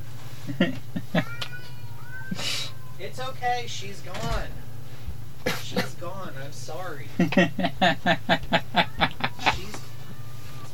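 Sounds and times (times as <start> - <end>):
low steady hum: 0.0 - 10.7
speech: 0.5 - 1.4, 3.0 - 4.6, 5.7 - 8.9
cats yowling and meowing while fighting at a screen door: 1.0 - 3.2, 8.2 - 10.7
laughter: 7.1 - 9.8.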